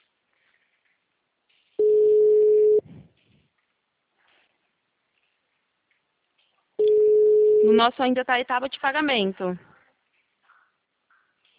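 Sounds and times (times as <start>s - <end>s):
telephone line tone while calling a client: 1.8s - 2.8s, 6.8s - 7.8s
speech: 7.8s - 9.7s.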